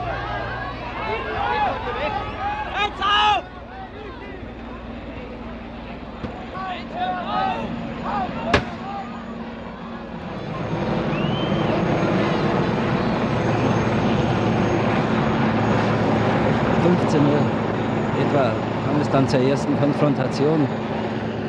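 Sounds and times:
crowd voices and shouting: 0.0s - 21.4s
helicopter droning overhead: 0.0s - 21.4s
sharp bang: 8.5s - 8.9s
speech: 19.1s - 20.9s.

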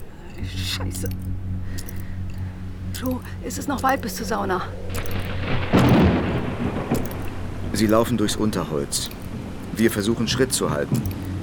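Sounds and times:
deep rumble of thunder: 0.0s - 11.4s
speech: 0.8s - 2.0s, 2.9s - 5.7s, 7.8s - 9.2s, 9.8s - 11.2s
heavy rain: 4.9s - 11.4s.

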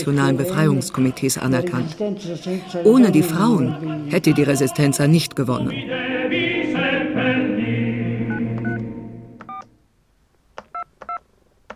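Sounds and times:
speech: 0.0s - 6.5s
musical passage: 5.7s - 9.5s
telephone touch-tone dialing beeps: 8.3s - 8.8s, 9.4s - 9.7s.

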